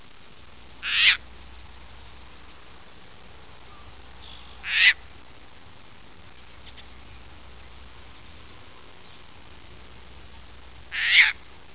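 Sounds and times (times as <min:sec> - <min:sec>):
Caspian tern calling: 0:00.8 - 0:02.7, 0:03.5 - 0:05.2, 0:06.3 - 0:09.4, 0:10.2 - 0:11.5.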